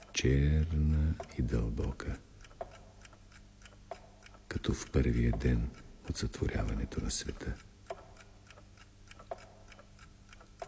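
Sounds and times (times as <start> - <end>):
clock ticking: 0.0 - 10.6
speech: 0.2 - 2.3, 4.6 - 7.7.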